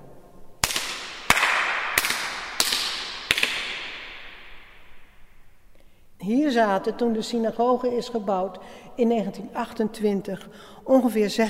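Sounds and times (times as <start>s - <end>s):
hand claps echoing in the large main hall of a synagogue: 0.6s - 4.8s
speech: 6.3s - 11.4s.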